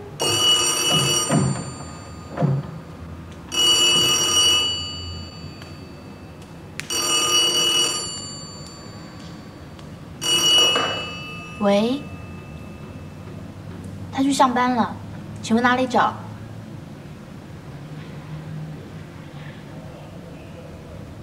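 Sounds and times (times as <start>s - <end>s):
faint noise: 0.0s - 21.2s
old-style telephone bell ringing in a film scene: 0.2s - 2.8s, 3.5s - 13.4s
speech: 14.4s - 16.2s.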